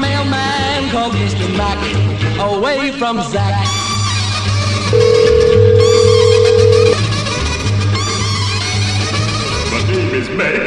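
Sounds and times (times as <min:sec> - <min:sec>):
music: 0:00.0 - 0:10.6
speech: 0:01.0 - 0:03.8, 0:10.1 - 0:10.6
phone ringback tone from an outgoing call: 0:04.9 - 0:07.0.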